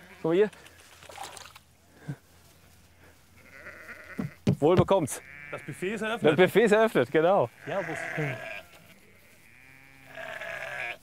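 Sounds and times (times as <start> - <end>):
speech: 0.2 - 0.7, 4.6 - 8.5
female sheep bleating at a feeding: 3.4 - 4.4, 5.1 - 11.0.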